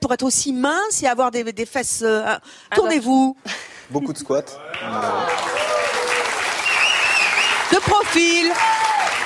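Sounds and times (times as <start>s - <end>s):
speech: 0.0s - 5.6s, 7.8s - 9.0s
studio audience applause on a French TV talk show: 4.6s - 9.2s.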